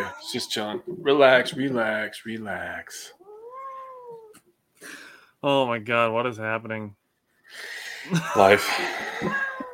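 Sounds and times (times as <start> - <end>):
angry female cat yowling: 0.0 - 0.9, 3.3 - 4.4, 9.2 - 9.7
speech: 0.0 - 3.2, 4.8 - 9.4.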